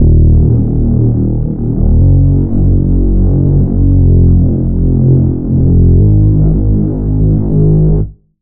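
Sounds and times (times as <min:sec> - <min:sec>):
reese bass synth: 0:00.0 - 0:08.1.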